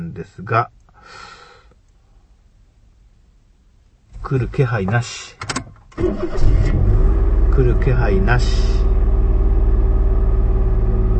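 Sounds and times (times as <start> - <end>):
speech: 0.2 - 1.3, 4.2 - 7.0, 7.6 - 8.9
car engine idling after being started, heard from the dashboard: 6.1 - 11.1.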